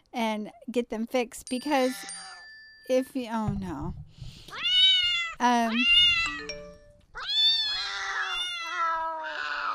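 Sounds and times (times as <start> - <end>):
speech: 0.3 - 2.2, 2.9 - 4.6, 5.4 - 6.6
cat meowing loudly: 4.5 - 6.5, 7.1 - 9.7.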